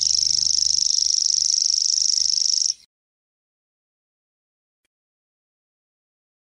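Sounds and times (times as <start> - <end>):
common grasshopper warbler trilling in a high-pitched reel: 0.0 - 2.9.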